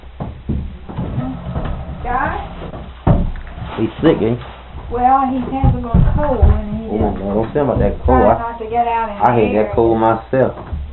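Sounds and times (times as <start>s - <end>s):
chair being dragged and pulled up across the floor: 0.6s - 5.6s, 6.5s - 9.7s
speech: 3.8s - 10.9s.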